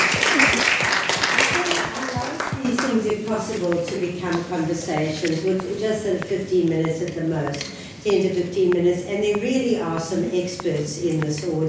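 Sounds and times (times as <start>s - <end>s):
steady dense audience applause: 0.0s - 2.9s
speech: 3.3s - 11.6s.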